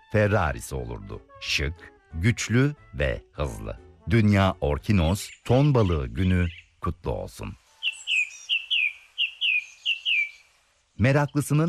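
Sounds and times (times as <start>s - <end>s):
speech: 0.1s - 7.6s, 11.0s - 11.6s
faint bird chirps in a dawn chorus: 5.0s - 11.6s
bird whistling short high descending notes at dawn: 7.8s - 10.5s.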